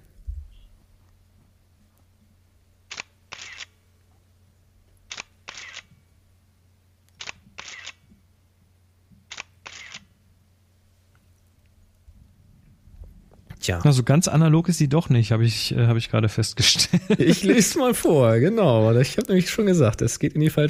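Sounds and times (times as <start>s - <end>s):
low hum: 0.0s - 20.6s
digital medium-format SLR camera shutter and mirror clacking: 2.9s - 3.8s, 5.1s - 5.9s, 7.2s - 8.0s, 9.3s - 10.1s
speech: 13.6s - 20.6s
laughter: 16.6s - 18.2s.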